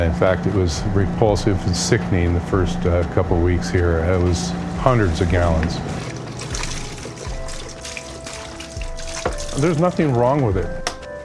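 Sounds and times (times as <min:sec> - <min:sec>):
speech: 0:00.0 - 0:06.1, 0:09.6 - 0:10.8
faint low hum: 0:00.0 - 0:07.8
milk pouring and gurgling down a drain at a grocery store in Montana: 0:04.2 - 0:09.9.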